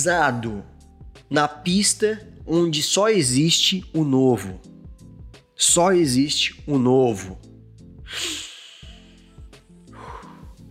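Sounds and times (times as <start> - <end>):
speech: 0.0 - 4.8, 5.6 - 7.5, 8.1 - 8.4
deep audible breath drawn in: 8.1 - 10.6.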